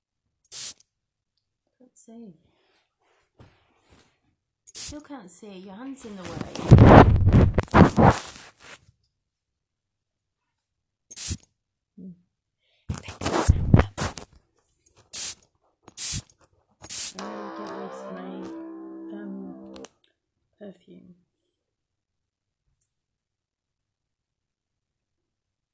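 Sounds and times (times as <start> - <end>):
perfume atomizer spraying hissing bursts: 0.5 - 0.9, 4.7 - 5.0, 11.1 - 11.5, 15.1 - 17.2
speech: 2.0 - 2.6, 4.9 - 8.3.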